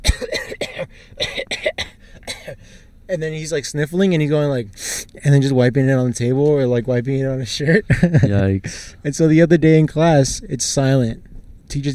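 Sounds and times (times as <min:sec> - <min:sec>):
person imitating a classmate coughing: 0:00.0 - 0:02.6
speech: 0:03.1 - 0:11.9
laughter: 0:05.3 - 0:10.4.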